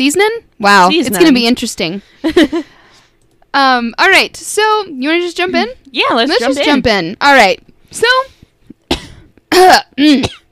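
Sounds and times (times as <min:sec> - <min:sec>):
speech: 0:00.0 - 0:02.7, 0:03.6 - 0:08.4, 0:09.6 - 0:10.4
person clearing throat with something stuck in the throat: 0:08.9 - 0:10.5
person coughing with something stuck in the throat: 0:08.9 - 0:10.5.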